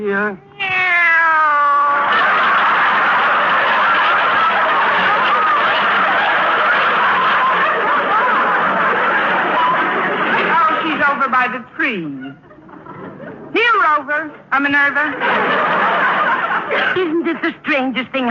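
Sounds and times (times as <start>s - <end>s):
speech: 0.0s - 0.5s, 11.3s - 12.5s, 13.8s - 18.2s
cat meowing: 0.4s - 2.1s
laughter: 1.6s - 13.5s, 15.0s - 18.2s.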